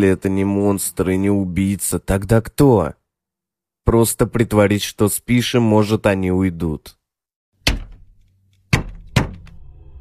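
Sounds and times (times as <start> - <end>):
speech: 0.0 - 3.0, 3.9 - 7.0
knocking on a window: 8.7 - 9.6.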